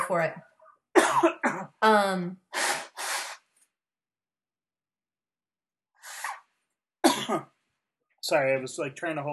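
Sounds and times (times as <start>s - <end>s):
speech: 0.1s - 2.5s, 7.3s - 7.5s, 8.3s - 9.3s
person blowing nose: 2.5s - 3.5s, 6.0s - 6.5s.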